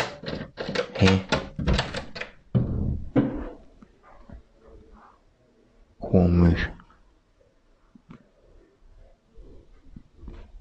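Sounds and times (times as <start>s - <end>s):
door clunking and rattling as it opens: 0.0s - 3.4s
speech: 1.0s - 1.3s
door thumping shut: 1.2s - 3.4s
soft shuffling: 3.4s - 5.5s, 7.8s - 10.6s.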